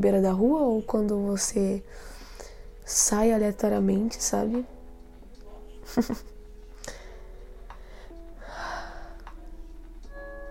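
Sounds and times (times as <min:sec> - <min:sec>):
speech: 0:00.0 - 0:02.2, 0:02.9 - 0:04.8, 0:05.9 - 0:06.3
constant noise: 0:00.0 - 0:10.4
laughter: 0:05.8 - 0:06.3
deep breath drawn in before speaking: 0:06.8 - 0:09.2.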